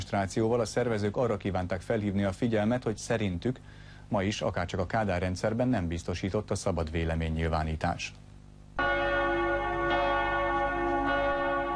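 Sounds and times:
speech: 0.1 - 8.2
church bell ringing at noon: 8.8 - 11.7.

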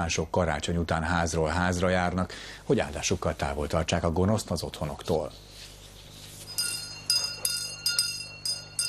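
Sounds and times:
speech: 0.0 - 5.5
small handbells ringing for a Catholic house blessing in Transylvania: 6.5 - 8.8.

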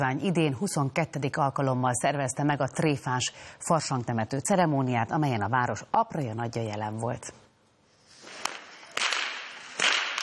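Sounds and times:
speech: 0.0 - 7.4
whips cracking outdoors during a carnival parade of folk tradition keepers: 8.3 - 10.2.

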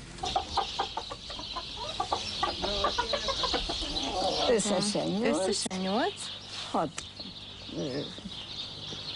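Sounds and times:
several hens clucking: 0.0 - 6.0.

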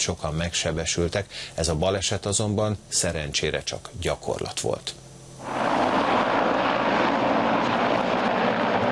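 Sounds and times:
speech: 0.0 - 5.8
helicopter engine and rotor roar: 5.4 - 8.9.

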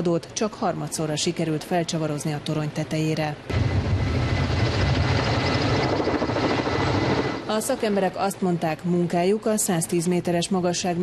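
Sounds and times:
speech: 0.0 - 4.3, 7.5 - 11.0
helicopter hovering while placing a transmitter antenna on a tower: 3.5 - 8.2.

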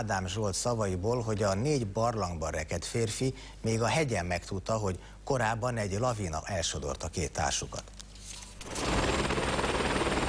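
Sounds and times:
speech: 0.0 - 8.0
rescue helicopter flying cavers down from a mountain in northern Italy: 8.6 - 10.2.

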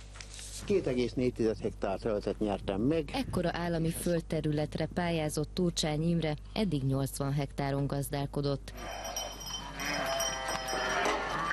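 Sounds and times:
low constant hum: 0.0 - 11.5
speech: 0.6 - 9.2
several sheep bleating: 8.8 - 11.5.

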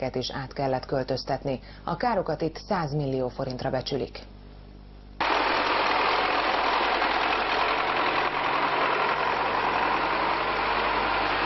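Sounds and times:
speech: 0.0 - 4.4
tractor engine running: 5.2 - 11.4.

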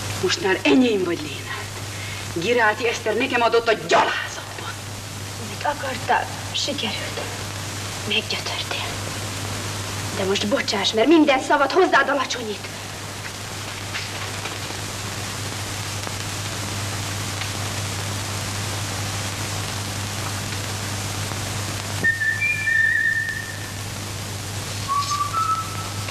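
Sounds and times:
hiss: 0.0 - 26.0
speech: 0.2 - 1.6, 2.3 - 4.3, 5.6 - 7.4, 8.0 - 9.1, 10.2 - 12.8
person whistling: 22.0 - 23.6, 24.9 - 26.0.

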